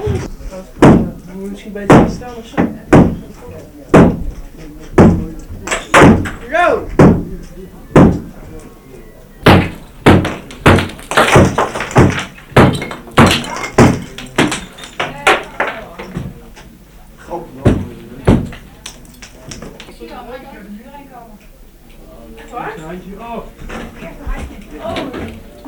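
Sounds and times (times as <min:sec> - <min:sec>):
heavy thuds and bangs of a masonry wall by a staircase broken through with a jack: 0:00.0 - 0:08.4, 0:09.4 - 0:16.4, 0:17.6 - 0:18.7
voices: 0:00.0 - 0:25.6.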